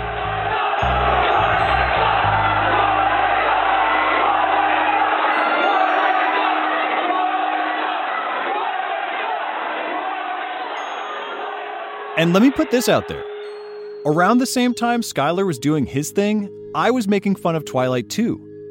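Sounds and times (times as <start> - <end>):
large crowd of young men chanting and shouting in a big hall: 0.0 - 13.3
speech: 12.2 - 13.3, 14.0 - 18.5.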